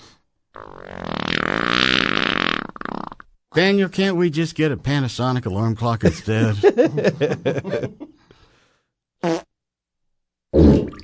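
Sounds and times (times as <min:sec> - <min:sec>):
short buzzy reedy farts: 0:00.5 - 0:03.3, 0:09.2 - 0:09.5, 0:10.5 - 0:11.0
speech: 0:03.6 - 0:08.0
laughter: 0:06.0 - 0:08.2
breathy voiced sounds: 0:08.0 - 0:08.9.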